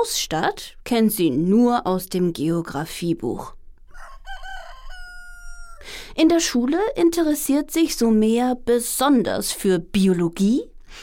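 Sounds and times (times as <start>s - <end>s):
speech: 0.0s - 3.6s, 5.8s - 11.0s
rooster crowing: 3.9s - 5.9s.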